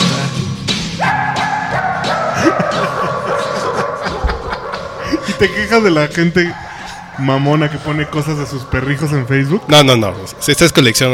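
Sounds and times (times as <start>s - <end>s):
steady musical backing: 0.0s - 11.1s
dogs barking a pop song: 0.7s - 10.4s
laughter: 1.9s - 9.4s
speech: 5.4s - 6.6s, 7.2s - 11.1s.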